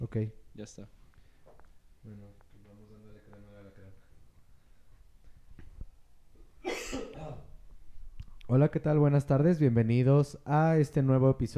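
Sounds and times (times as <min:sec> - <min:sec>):
speech: 0:00.1 - 0:01.0, 0:02.0 - 0:02.9, 0:08.5 - 0:11.5
faint rustling: 0:00.4 - 0:08.7
person coughing: 0:06.6 - 0:07.5.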